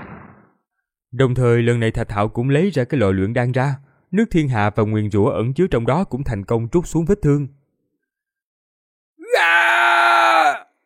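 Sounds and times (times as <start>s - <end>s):
speech: 1.1s - 7.6s
man screaming in pain: 9.2s - 10.7s.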